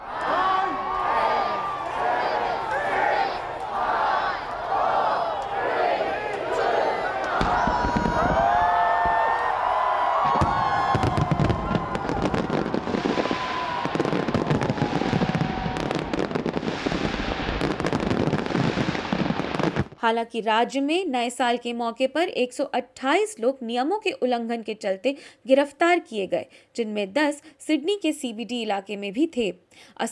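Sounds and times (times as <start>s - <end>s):
large crowd cheering and chattering at New Year celebrations on Sydney Harbour Australia: 0.0s - 16.4s
fireworks exploding at New Year celebrations on Sydney Harbour Australia: 0.0s - 20.0s
speech: 20.1s - 30.1s.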